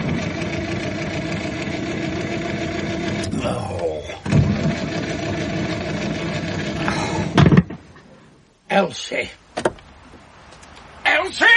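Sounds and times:
car engine idling: 0.0s - 8.4s
speech: 8.8s - 9.4s, 11.3s - 11.5s.

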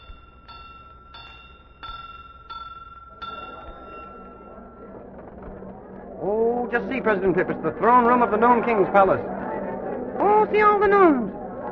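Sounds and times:
doorbell chiming: 0.0s - 5.2s
busy noise: 2.9s - 11.7s
speech: 6.2s - 9.4s, 10.5s - 11.2s.

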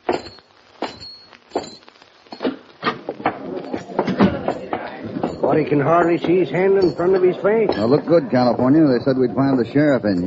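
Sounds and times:
footsteps walking up to a café entrance: 0.0s - 8.8s
speech: 5.5s - 10.2s.

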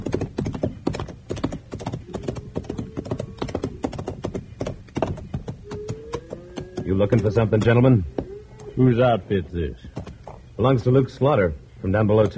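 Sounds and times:
horse hooves clip-clopping: 0.0s - 8.8s, 9.8s - 10.5s
speech: 6.9s - 8.2s, 8.8s - 9.9s, 10.6s - 12.3s.

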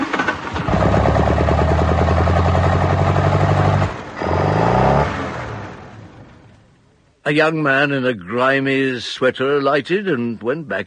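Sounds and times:
small car engine revving as it pulls out: 0.0s - 6.2s
speech: 7.3s - 10.8s.

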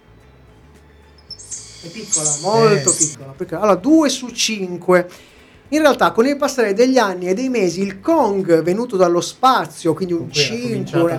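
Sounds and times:
faint hiss: 0.0s - 11.1s
small monkey squeaking call: 1.2s - 3.2s
speech: 1.8s - 11.1s.

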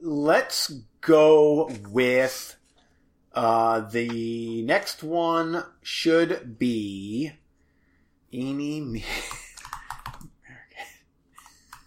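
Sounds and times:
speech: 0.2s - 2.6s, 3.4s - 7.4s, 8.3s - 9.4s
typing on a computer keyboard: 9.2s - 10.3s, 11.4s - 11.8s.

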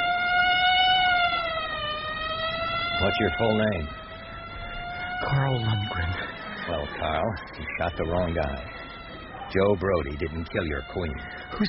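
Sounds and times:
police patrol car siren passing: 0.0s - 11.6s
speech: 3.0s - 4.0s, 5.2s - 8.8s, 9.5s - 11.6s.

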